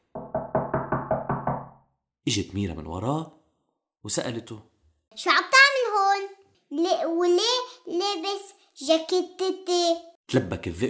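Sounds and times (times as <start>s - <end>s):
knocking on the wooden door of a grandmother's house: 0.1s - 1.8s
speech: 2.3s - 3.4s, 4.0s - 5.4s, 6.8s - 10.8s.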